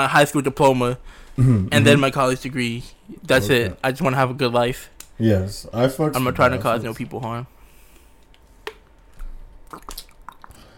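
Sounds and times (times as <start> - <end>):
speech: 0.0 - 7.6
person sipping and swallowing water: 9.1 - 10.7.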